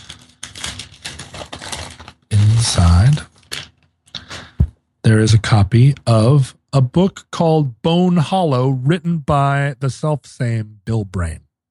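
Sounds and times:
brown paper package tied with twine being unwrapped: 0.0s - 4.5s
speech: 2.6s - 3.3s, 5.1s - 11.4s.

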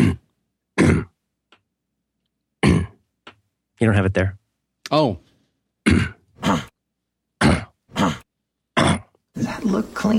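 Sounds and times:
harsh throaty coughs: 0.0s - 1.2s, 2.6s - 3.0s, 5.8s - 6.8s, 7.4s - 9.2s
speech: 3.8s - 5.3s, 9.7s - 10.1s.

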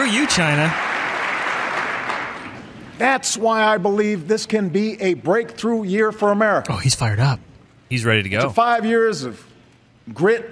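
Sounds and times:
audience applause from a large crowd: 0.0s - 2.6s
speech: 0.1s - 0.9s, 3.0s - 9.5s, 10.1s - 10.4s.

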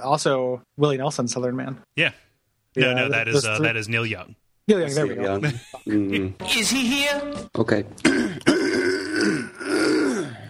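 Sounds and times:
speech: 0.0s - 8.6s, 9.2s - 9.7s
person clearing throat: 8.0s - 10.4s.

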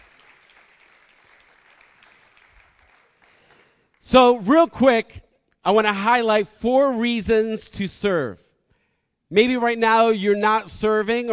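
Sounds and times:
large crowd applauding: 0.0s - 4.0s
speech: 4.1s - 8.4s, 9.3s - 11.3s.

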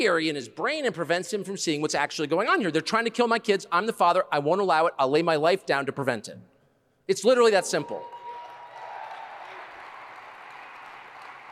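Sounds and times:
speech: 0.0s - 6.5s, 7.1s - 8.2s
large crowd cheering and applauding: 7.6s - 11.5s.

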